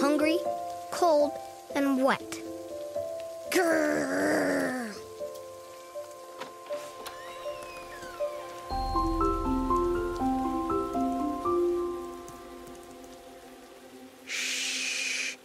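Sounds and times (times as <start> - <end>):
rain pattering steadily: 0.0 - 15.4
speech: 0.3 - 2.4, 3.5 - 4.4
slow melody of soft hooting tones: 5.2 - 14.4.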